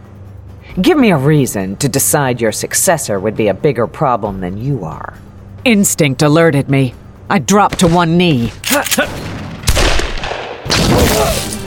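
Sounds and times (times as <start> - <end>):
speech: 0.8 - 9.2
sawed-off shotgun blasts: 9.0 - 11.5.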